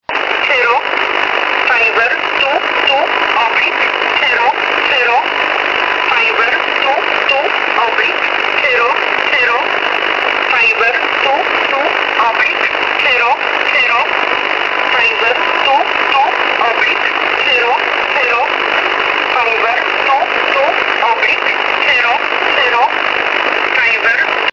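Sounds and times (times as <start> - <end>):
number station broadcast: 0.0 - 24.5.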